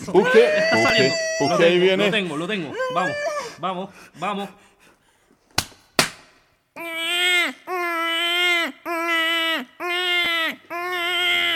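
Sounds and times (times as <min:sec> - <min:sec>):
speech: 0:00.0 - 0:04.7
newborn baby crying: 0:00.2 - 0:03.6, 0:06.8 - 0:11.5
sharp smacks: 0:05.5 - 0:06.4.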